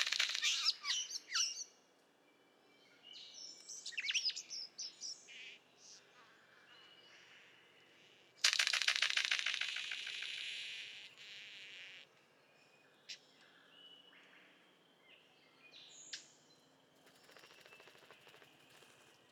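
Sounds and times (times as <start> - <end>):
Golden bowerbird Prionodura Newtoniana squeaky whistled notes and chirps: 0.2 - 1.6
Golden bowerbird Prionodura Newtoniana harsh rattling bursts: 8.4 - 10.6.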